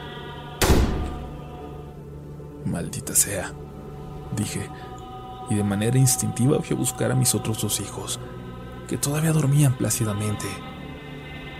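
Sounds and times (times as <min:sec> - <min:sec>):
living-room door opening and slamming shut: 0:00.6 - 0:01.4
speech: 0:02.6 - 0:10.7.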